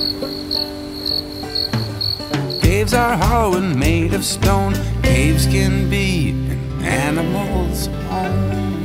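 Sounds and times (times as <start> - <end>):
crickets chirping: 0.0 - 3.8
speech: 0.0 - 8.7.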